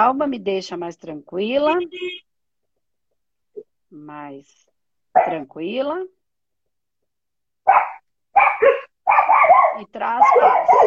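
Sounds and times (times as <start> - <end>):
speech: 0.0 - 2.3, 3.9 - 6.2, 7.7 - 8.0, 9.8 - 10.8
dog barking: 5.1 - 5.4, 7.6 - 10.8.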